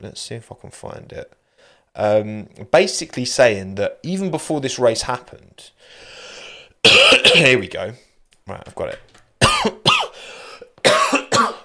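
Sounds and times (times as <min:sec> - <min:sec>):
speech: 0:00.0 - 0:06.2, 0:06.8 - 0:09.1
person coughing harshly: 0:06.9 - 0:07.6, 0:09.4 - 0:11.6.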